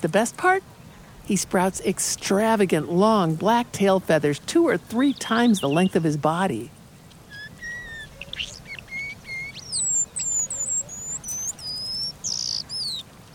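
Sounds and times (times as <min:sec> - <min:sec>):
speech: 0:00.0 - 0:06.8
Eastern paradise whydah whistled calls: 0:07.3 - 0:13.0.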